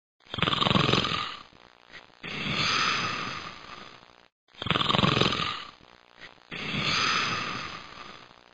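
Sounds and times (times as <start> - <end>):
snoring: 0.2 - 1.5, 2.2 - 5.8, 6.5 - 8.4.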